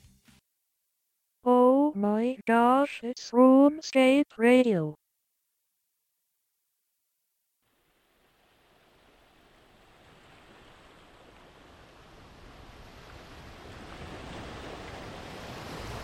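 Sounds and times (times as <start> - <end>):
speech: 2.0 - 5.0
ocean waves rolling onto a beach: 7.7 - 16.0.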